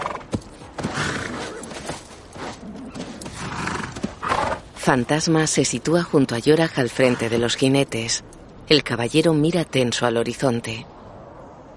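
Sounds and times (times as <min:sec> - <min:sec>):
restless cavalry horses pawing and stamping the frozen ground: 0:00.0 - 0:05.2
speech: 0:04.8 - 0:10.9.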